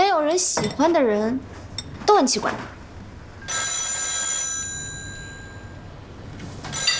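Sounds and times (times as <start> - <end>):
speech: 0.2 - 2.8
telephone bell ringing: 3.5 - 5.9, 6.7 - 6.9.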